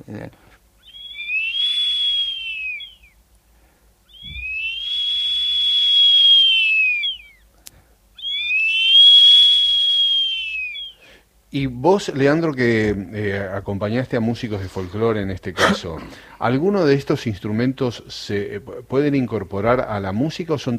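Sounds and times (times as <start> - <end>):
speech: 0.1 - 0.6, 11.6 - 20.7
Aztec warrior whistle blasts: 0.8 - 3.2, 4.1 - 7.4, 8.2 - 11.0.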